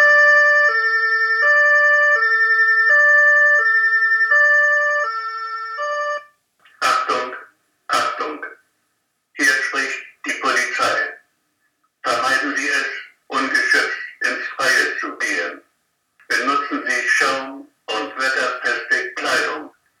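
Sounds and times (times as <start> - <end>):
police patrol car two-tone siren: 0.0 - 6.3
person speaking: 6.7 - 8.6, 9.4 - 11.2, 12.0 - 19.8.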